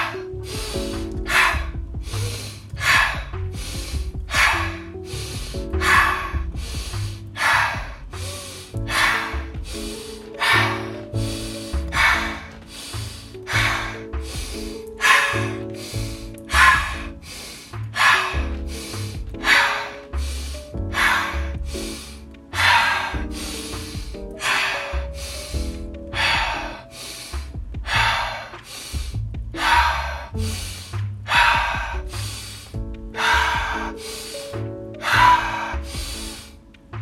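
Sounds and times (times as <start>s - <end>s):
breathing in through the nose and out through the mouth: 0.0s - 37.0s
gentle tonal music: 0.0s - 37.0s.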